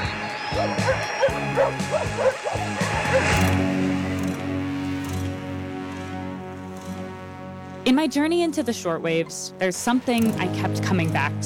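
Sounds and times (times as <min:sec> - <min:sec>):
electronic music track played over radio: 0:00.0 - 0:10.6
droning synth chords: 0:00.0 - 0:11.4
speech: 0:00.5 - 0:03.7, 0:07.9 - 0:11.4
several dogs barking in bursts over radio music: 0:00.6 - 0:03.4.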